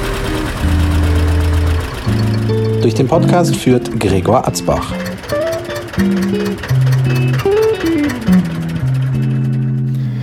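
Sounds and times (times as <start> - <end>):
tractor engine running in an old barn: 0.0 - 10.2
speech: 2.8 - 5.2, 6.0 - 8.5.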